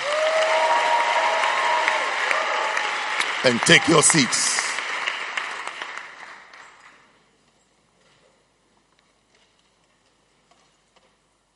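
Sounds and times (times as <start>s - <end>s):
faint cheering: 0.0s - 4.8s
audience clapping hands: 0.0s - 7.0s
speech: 3.4s - 4.6s.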